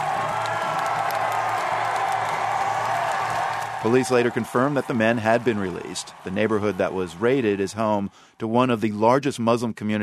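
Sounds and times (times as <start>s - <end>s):
sharper whoops from the crowd: 0.0s - 4.8s
people clapping in the crowd: 0.0s - 8.9s
large crowd of demonstrators cheering in Scotland: 0.0s - 9.3s
speech: 3.8s - 10.0s.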